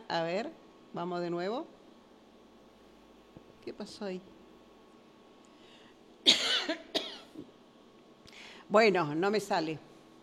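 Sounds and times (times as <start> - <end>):
speech: 0.1 - 1.8, 3.6 - 4.3, 8.7 - 9.9
person coughing: 6.2 - 7.5.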